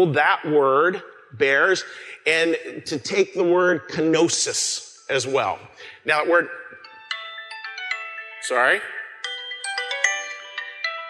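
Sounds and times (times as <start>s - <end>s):
speech: 0.0s - 6.9s, 8.5s - 9.0s
mobile phone ringtone with bright repeating electronic melody: 6.6s - 11.0s.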